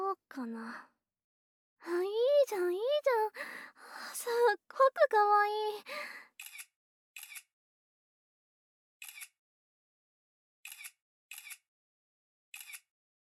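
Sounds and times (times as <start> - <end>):
speech: 0.4 - 1.0, 1.8 - 6.2
camera shutter clicking during a portrait photo shoot: 10.7 - 11.6, 12.6 - 12.8.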